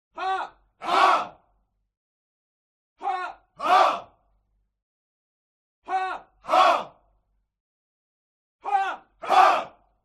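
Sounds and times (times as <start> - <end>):
military crowd shouting: 0.8 - 1.4, 3.1 - 4.1, 5.9 - 7.0, 8.7 - 9.8.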